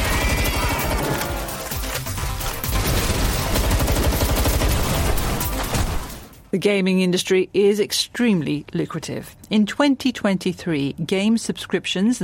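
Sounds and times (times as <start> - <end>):
video game gunfire barrage of rapid shots and bursts: 0.0 - 6.4
speech: 6.5 - 12.2.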